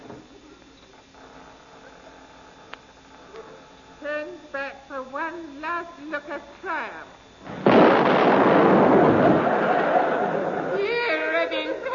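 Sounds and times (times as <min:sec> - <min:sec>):
speech: 0:04.2 - 0:07.6
explosion sound effect: 0:07.5 - 0:09.8
laughter: 0:08.8 - 0:11.9.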